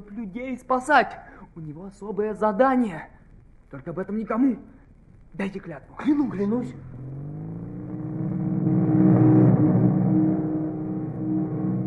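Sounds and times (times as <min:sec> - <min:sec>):
speech: 0:00.2 - 0:07.2
several motorcycles roaring past: 0:06.6 - 0:11.8.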